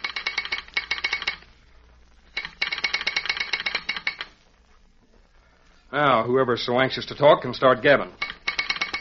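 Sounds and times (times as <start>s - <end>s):
telegraph sounder clicking an incoming station call signal: 0.0s - 1.5s, 2.3s - 4.4s, 7.9s - 9.0s
speech: 5.9s - 8.2s.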